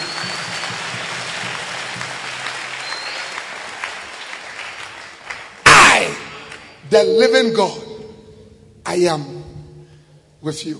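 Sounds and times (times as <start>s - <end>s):
audience applauding: 0.0s - 6.8s
speech: 6.9s - 7.8s, 8.9s - 9.3s, 10.4s - 10.7s.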